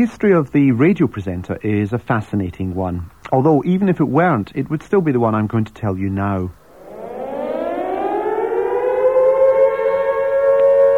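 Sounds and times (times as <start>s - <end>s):
speech: 0.0s - 6.6s
Second World War air raid siren wailing: 6.6s - 10.9s.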